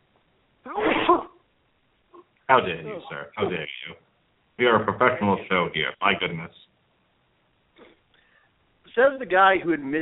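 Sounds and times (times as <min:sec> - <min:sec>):
person sneezing: 0:00.7 - 0:01.4
speech: 0:02.5 - 0:06.7, 0:09.0 - 0:09.9.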